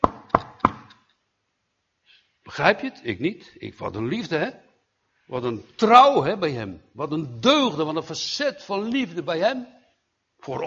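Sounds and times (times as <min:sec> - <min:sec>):
knocking on a wooden door: 0:00.0 - 0:00.9
speech: 0:02.6 - 0:04.7, 0:05.3 - 0:09.8, 0:10.4 - 0:10.6.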